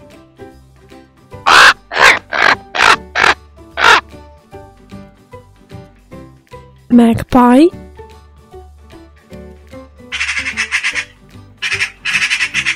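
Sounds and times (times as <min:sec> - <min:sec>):
crow cawing: 0:01.5 - 0:04.0, 0:10.1 - 0:12.7
speech: 0:06.9 - 0:07.8.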